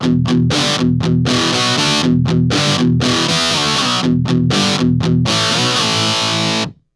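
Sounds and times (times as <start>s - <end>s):
guitar: 0.0s - 6.9s.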